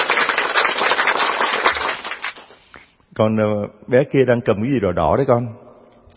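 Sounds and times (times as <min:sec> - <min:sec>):
crowd applauding with many hands clapping: 0:00.0 - 0:02.7
speech: 0:03.2 - 0:05.6.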